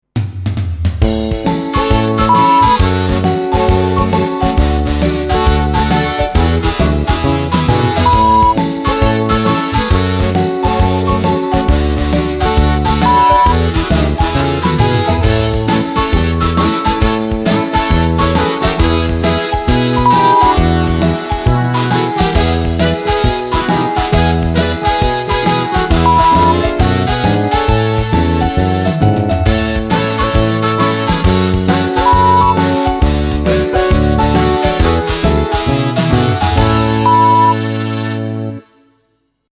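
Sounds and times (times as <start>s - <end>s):
Christmas rock music: 1.0s - 38.4s.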